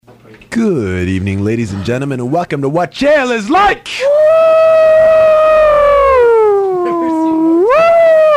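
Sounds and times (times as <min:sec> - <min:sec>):
speech: 0:00.5 - 0:04.2
ambulance siren wail: 0:04.3 - 0:08.3.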